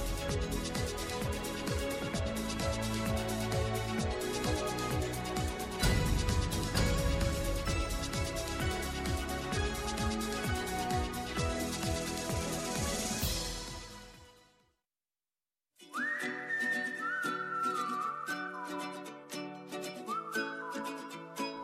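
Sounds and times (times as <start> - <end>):
instrumental backing track: 0.0 - 14.2
person whistling a melody: 15.8 - 21.6.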